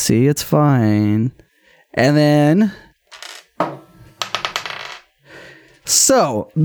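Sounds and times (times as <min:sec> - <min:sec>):
speech: 0:00.0 - 0:02.9, 0:05.9 - 0:06.6
die tossed onto a hard table: 0:03.1 - 0:05.1.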